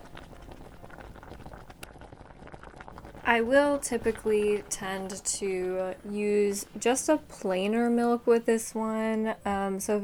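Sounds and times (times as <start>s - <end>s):
water heating in a kettle for tea: 0.0s - 10.0s
speech: 3.3s - 10.0s.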